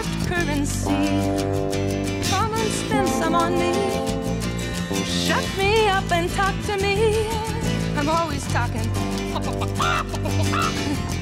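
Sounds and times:
speech: 0.3 - 4.1, 4.9 - 11.2
laughter: 9.2 - 11.2
chicken squawking: 9.4 - 10.9.

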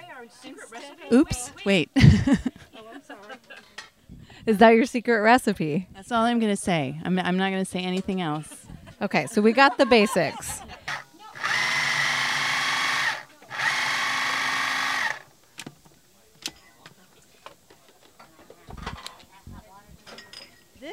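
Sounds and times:
speech: 0.2 - 3.8, 4.4 - 10.7
laughter: 0.4 - 3.8, 8.3 - 11.4
food processor motor whirring as it chops heirloom tomatoes: 10.8 - 15.3.

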